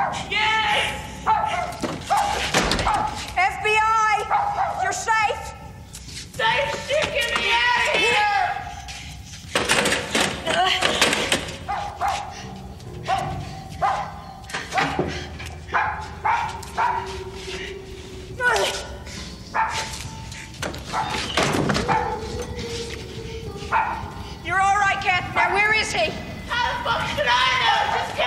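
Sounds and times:
voices shouting: 0.0s - 9.4s, 10.3s - 28.2s
dog trapped in a well barking and yelping: 1.1s - 3.4s, 4.2s - 5.2s, 11.6s - 25.7s, 26.5s - 28.2s.

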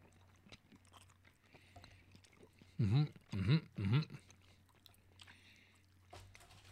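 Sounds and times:
crunchy chewing of candy corn: 0.0s - 6.7s
low hum: 0.0s - 6.7s
mouth noises: 2.6s - 4.4s.

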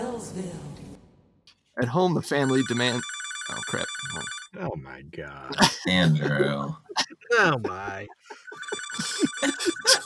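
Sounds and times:
laughter: 1.8s - 10.0s
speech: 1.8s - 10.0s
old landline telephone bell ringing: 2.4s - 4.5s, 8.4s - 10.0s.

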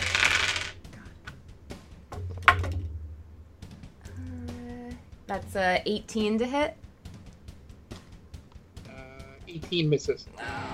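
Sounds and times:
small dice rattling: 0.0s - 0.8s
speech: 5.3s - 6.8s, 9.5s - 10.6s.

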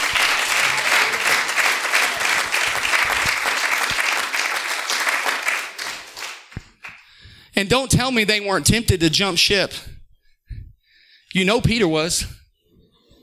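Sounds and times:
large audience clapping: 0.0s - 7.0s
speech: 7.6s - 9.9s, 11.4s - 12.4s.

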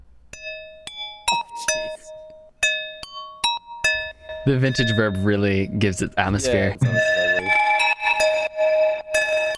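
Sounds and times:
speech: 1.6s - 2.1s, 4.5s - 7.6s
dry synth ice bells from a preset playing a sparse melody: 3.0s - 5.9s, 6.8s - 9.5s.

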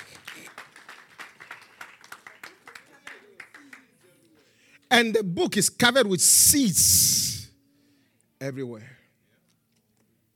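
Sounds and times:
audience clapping during a sermon: 0.0s - 4.0s
speech: 4.9s - 7.3s, 8.4s - 9.0s.

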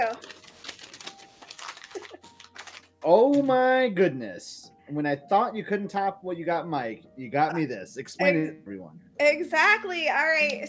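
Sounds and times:
speech: 0.0s - 0.4s, 3.0s - 10.6s
crinkly tissue paper rustling as a gift is unwrapped: 0.0s - 3.5s.

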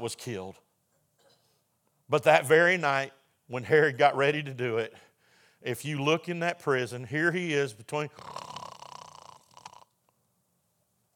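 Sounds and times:
speech: 0.0s - 0.7s, 2.1s - 8.5s
man's voice imitating loud rasping snoring: 8.1s - 10.0s.

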